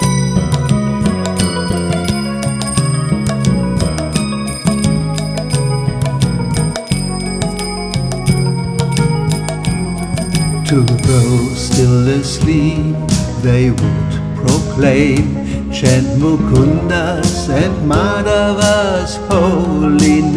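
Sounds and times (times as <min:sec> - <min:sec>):
ankle bells jingling: 0:00.0 - 0:12.4
sustained droning instrumental music: 0:00.0 - 0:15.2
speech: 0:10.7 - 0:20.3.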